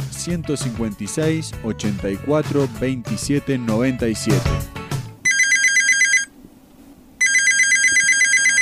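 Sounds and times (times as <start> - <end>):
speech: 0.2 - 4.8
telephone ringing with bright bell trills: 5.3 - 6.3, 7.2 - 8.6.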